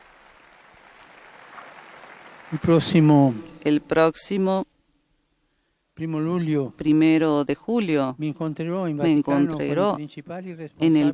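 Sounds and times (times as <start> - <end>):
large crowd applause: 0.0 - 3.5
speech: 2.5 - 4.7, 6.0 - 11.1.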